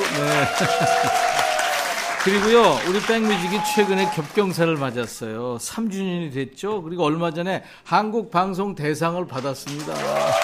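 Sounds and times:
laughter: 0.0s - 1.6s
studio audience applause: 0.0s - 5.2s, 9.4s - 10.4s
speech: 0.2s - 1.5s, 2.2s - 10.4s.

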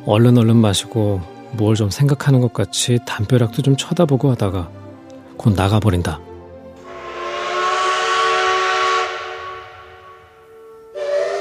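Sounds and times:
speech: 0.0s - 4.8s, 5.4s - 6.3s
steam train whistle blowing: 6.8s - 11.3s.

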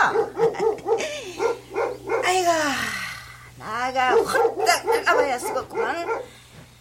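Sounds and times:
dog barking at an arriving visitor: 0.0s - 2.4s, 4.1s - 6.3s
speech: 3.9s - 6.4s.

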